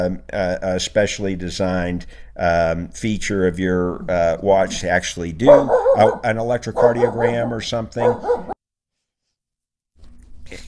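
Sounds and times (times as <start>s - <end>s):
speech: 0.0s - 8.6s
puppy grunting and snuffling in a radio studio: 3.9s - 8.6s.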